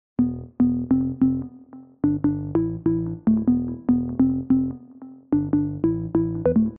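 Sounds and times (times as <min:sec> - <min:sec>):
organ-like sub bass: 0:00.2 - 0:01.4, 0:02.0 - 0:04.7, 0:05.4 - 0:06.7.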